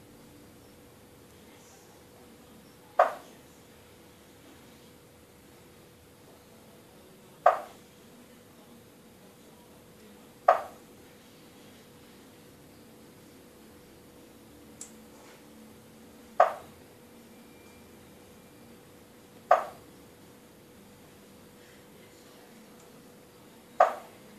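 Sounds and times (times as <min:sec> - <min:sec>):
striped marsh frog calling: 0:03.0 - 0:03.4, 0:07.4 - 0:07.8, 0:10.4 - 0:10.9, 0:16.3 - 0:16.8, 0:19.4 - 0:19.9, 0:23.7 - 0:24.2.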